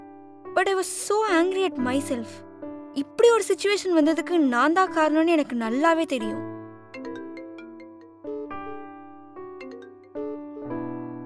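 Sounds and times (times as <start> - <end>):
speech: 0.5 - 6.5
phone ringtone for an incoming call: 6.9 - 8.2, 9.5 - 10.3.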